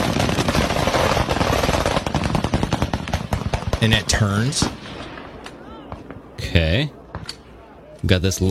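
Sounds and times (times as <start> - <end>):
machine gun firing tracer rounds into the night sky at a drone: 0.0 - 5.1
speech: 3.8 - 5.0, 6.5 - 7.0, 8.0 - 8.4.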